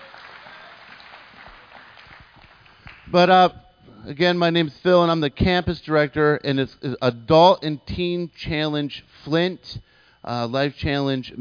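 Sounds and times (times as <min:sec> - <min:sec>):
crowd clapping: 0:00.0 - 0:03.2
speech: 0:03.1 - 0:11.3.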